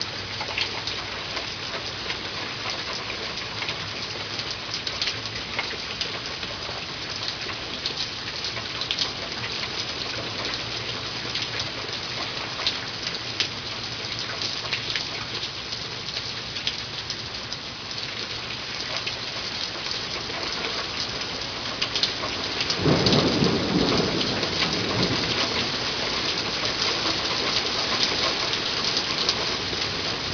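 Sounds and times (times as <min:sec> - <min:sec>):
rain: 0:00.0 - 0:30.3
thunder: 0:22.8 - 0:25.9.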